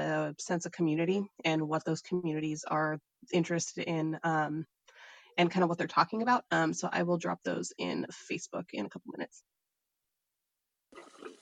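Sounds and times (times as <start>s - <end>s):
speech: 0.3s - 4.8s, 5.4s - 9.5s
water dispensing from a refrigerator: 11.0s - 11.4s.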